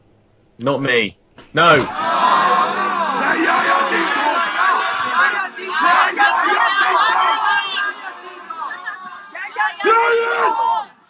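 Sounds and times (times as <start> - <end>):
speech: 0.6 - 2.1
laughter: 1.6 - 10.0
large crowd cheering and shouting: 1.6 - 11.0.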